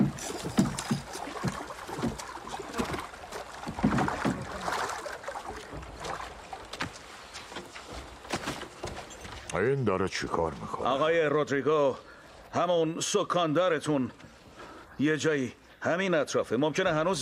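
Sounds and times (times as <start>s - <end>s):
water washing as a ship sets off: 0.0s - 9.3s
knocks and splashes: 0.0s - 9.5s
wind: 0.0s - 17.2s
speech: 9.6s - 14.3s, 15.0s - 17.2s.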